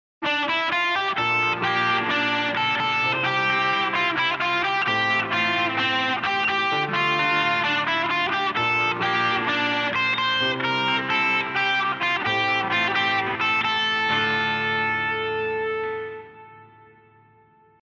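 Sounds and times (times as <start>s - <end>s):
guitar through an amp with drive: 0.2s - 17.8s.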